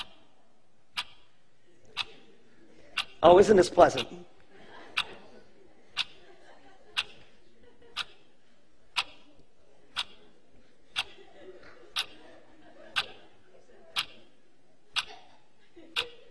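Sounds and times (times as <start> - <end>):
clock timer ticking: 0.0 - 0.3, 0.9 - 1.4, 2.0 - 2.3, 3.0 - 4.2, 5.0 - 5.2, 6.0 - 6.2, 7.0 - 7.3, 7.9 - 8.3, 8.9 - 10.2, 11.9 - 12.2, 12.9 - 13.2, 13.9 - 14.2, 14.9 - 15.2, 15.9 - 16.2
laughter: 1.7 - 16.2
person speaking cheerfully: 3.2 - 4.2
speech: 3.2 - 4.3.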